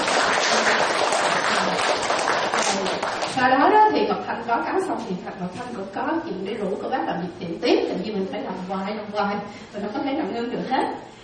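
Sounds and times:
audience applause at a Buddhist dharma talk: 0.0s - 3.4s
speech: 3.4s - 11.1s.

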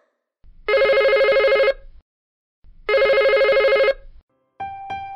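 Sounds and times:
telephone ringing: 0.7s - 1.8s, 2.9s - 4.1s.

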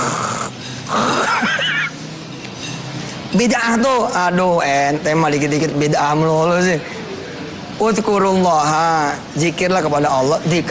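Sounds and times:
person imitating snoring: 0.0s - 1.4s
speech: 3.4s - 7.0s, 7.8s - 10.7s.

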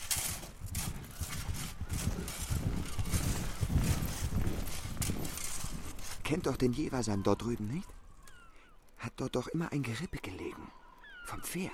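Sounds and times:
hoofbeats of a white horse approaching: 0.0s - 6.8s
speech: 6.3s - 8.0s, 9.1s - 11.7s.

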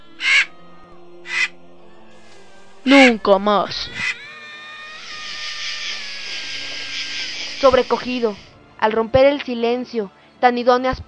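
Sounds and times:
raven cawing: 0.0s - 0.6s, 1.2s - 1.6s, 2.9s - 3.2s, 3.8s - 8.5s
speech: 2.8s - 4.1s, 7.6s - 11.0s.

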